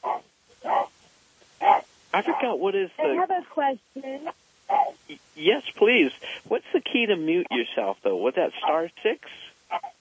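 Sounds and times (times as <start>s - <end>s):
dog woofing through an unmuted microphone in an online meeting: 0.0s - 0.9s, 1.6s - 2.6s, 4.7s - 5.0s
speech: 2.2s - 4.4s, 5.1s - 9.9s.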